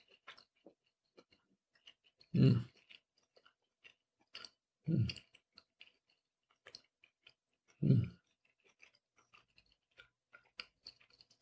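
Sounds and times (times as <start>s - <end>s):
wet chewing of cold cuts of lamb: 0.0s - 11.4s
mouth smacking: 2.3s - 2.8s, 7.8s - 8.2s.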